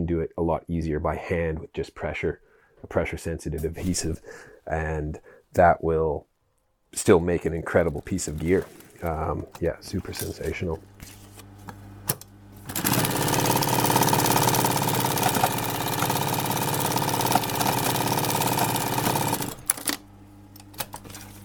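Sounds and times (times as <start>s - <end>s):
speech: 0.0s - 6.3s, 6.9s - 11.2s
faint handling sounds: 7.3s - 11.8s
compound feed sewing machine running: 12.6s - 20.0s.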